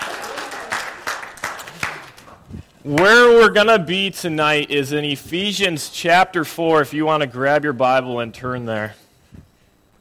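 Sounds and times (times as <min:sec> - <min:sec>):
audience at a church gathering applauding: 0:00.0 - 0:02.3
speech: 0:02.8 - 0:09.0.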